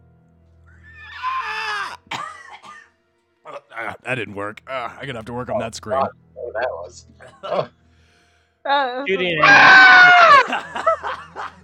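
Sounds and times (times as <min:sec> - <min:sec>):
voice imitating the shriek of a swamp creature: 0:00.8 - 0:02.1, 0:09.2 - 0:10.4
speech: 0:04.1 - 0:07.8, 0:08.7 - 0:10.9
laughter: 0:09.2 - 0:11.6.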